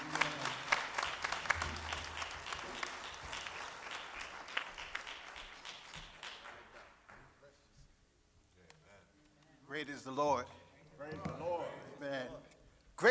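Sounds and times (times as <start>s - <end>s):
church audience applauding: 0.0s - 7.3s
speech: 9.8s - 13.0s.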